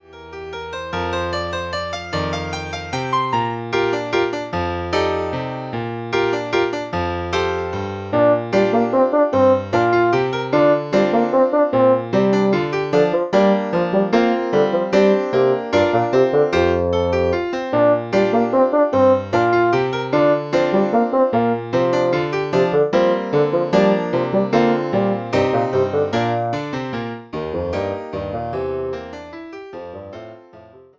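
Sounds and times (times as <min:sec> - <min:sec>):
piano: 0:00.0 - 0:30.9
bassoon: 0:07.7 - 0:28.8.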